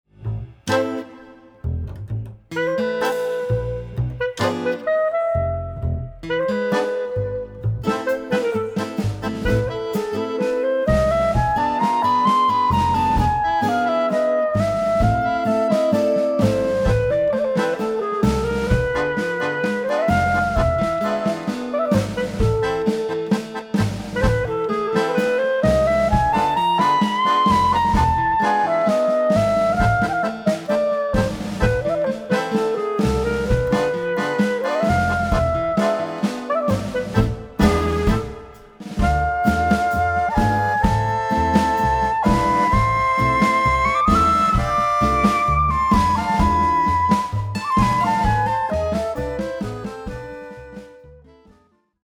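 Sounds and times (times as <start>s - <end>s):
clarinet: 0.7s - 51.7s.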